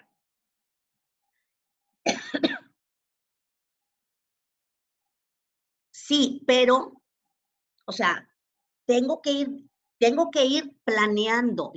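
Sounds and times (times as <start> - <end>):
person clearing throat: 2.1 - 2.8
person coughing: 2.1 - 2.8
speech: 6.1 - 7.0, 7.9 - 8.3, 8.9 - 11.7.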